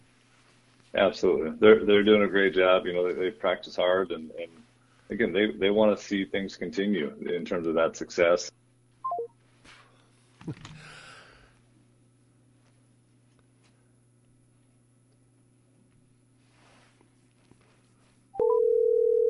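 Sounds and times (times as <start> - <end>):
speech: 0.9 - 8.6, 10.4 - 10.9
telephone dialing tones while redialing a disconnected caller: 18.4 - 19.2.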